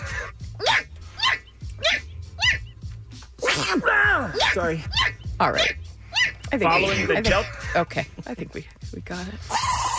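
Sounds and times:
high-pitched sneezes with a snorting squeaky edge: 0.0 - 2.6, 3.4 - 6.3
speech: 4.5 - 5.8, 6.5 - 9.6.

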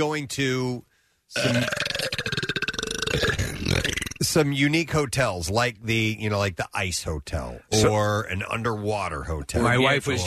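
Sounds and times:
speech: 0.0 - 2.3, 4.2 - 10.2
long loud burp: 1.4 - 4.2.

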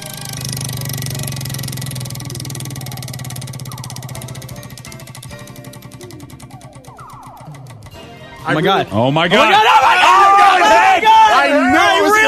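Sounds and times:
prize wheel spinning with rapid ticking: 0.0 - 8.9
speech: 8.4 - 12.2.

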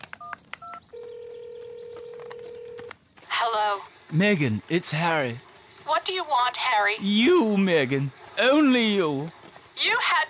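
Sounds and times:
telephone electronic beeps and long steady tone: 0.2 - 2.9
speech: 3.7 - 10.2.

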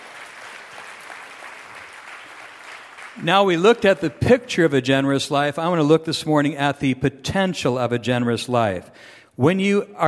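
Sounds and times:
church audience clapping: 0.0 - 4.1
speech: 3.2 - 10.0.

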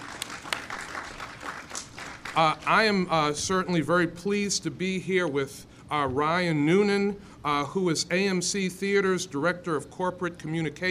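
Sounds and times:
audience applauding at a project announcement event in Buffalo: 0.0 - 2.9
speech: 2.4 - 10.8.

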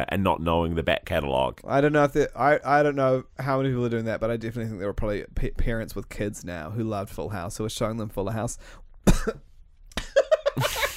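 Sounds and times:
speech: 0.0 - 9.5
person coughing with crisps stuck in the throat: 9.0 - 9.5.

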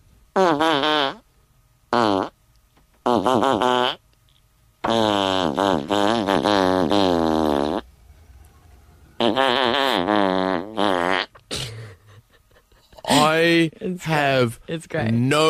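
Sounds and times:
loud buzzy farts pitched to a song's tune: 0.4 - 1.2, 1.9 - 2.4, 3.0 - 4.0, 4.8 - 7.9, 9.2 - 11.6
speech: 3.2 - 4.0, 14.0 - 15.4.

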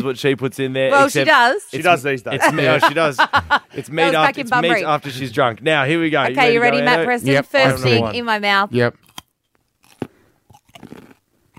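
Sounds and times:
speech: 0.0 - 9.0
laughter: 2.2 - 5.3, 6.2 - 8.0
person biting into and chewing a raw carrot: 8.9 - 11.5.

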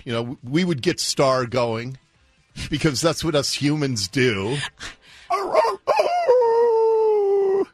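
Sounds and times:
speech: 0.0 - 2.0, 2.6 - 5.6
dog yelping: 5.3 - 6.9
dog howling: 5.3 - 7.7.

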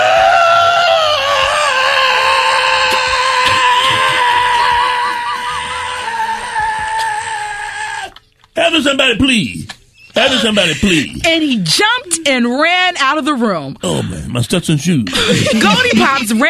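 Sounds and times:
person screaming in fright: 0.0 - 8.2
laughter: 0.4 - 7.2, 10.1 - 11.2, 15.1 - 16.4
speech: 8.9 - 16.4.

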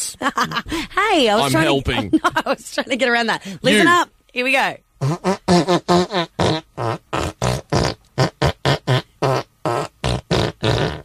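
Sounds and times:
speech: 0.2 - 6.3
rapid rhythmic tune-like fart noises: 5.0 - 11.0.

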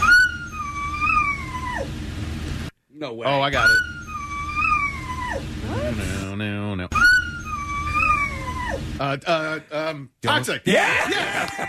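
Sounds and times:
dog howling along to pop song: 0.0 - 2.0, 3.6 - 6.2, 6.9 - 9.0
speech: 3.0 - 4.0, 5.8 - 6.9, 8.8 - 11.6
laughter: 10.8 - 11.6.

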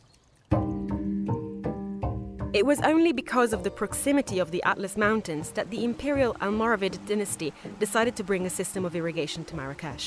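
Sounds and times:
small garden fountain water pouring into a basin: 0.0 - 1.1, 3.1 - 10.0
speech: 2.5 - 10.0.

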